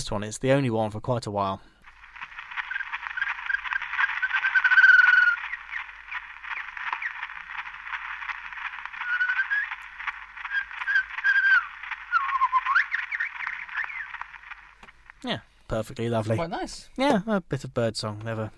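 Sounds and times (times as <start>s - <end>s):
speech: 0.0s - 1.8s, 15.2s - 18.5s
steady hiss of an early phonograph recording: 0.0s - 18.5s
Indian shama singing whistles, trills and sweeping phrases: 2.5s - 8.2s, 8.9s - 14.4s.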